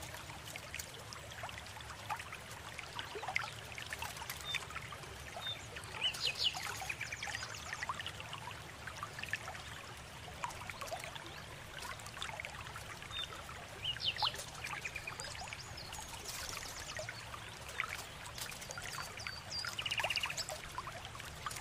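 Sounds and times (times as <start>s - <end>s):
calm river trickling and splashing in an autumn forest: 0.0s - 21.6s.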